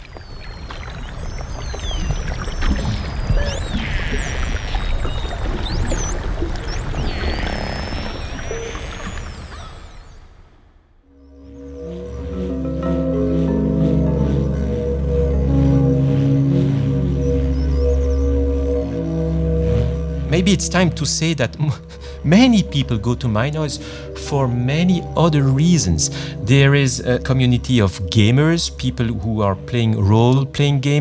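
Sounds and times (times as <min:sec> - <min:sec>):
dolphins whistling underwater: 0:00.0 - 0:10.3
low droning tonal dolphin calls underwater: 0:00.0 - 0:29.9
speech: 0:20.4 - 0:30.9.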